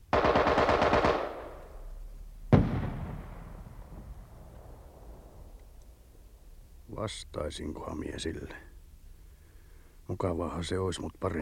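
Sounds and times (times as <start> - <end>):
enemy automatic gunfire: 0.1 - 1.7
single loud gunshot report: 2.5 - 4.0
speech: 7.0 - 8.7, 10.1 - 11.3.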